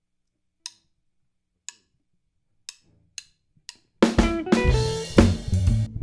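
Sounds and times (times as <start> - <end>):
drums playing along: 4.0 - 5.9.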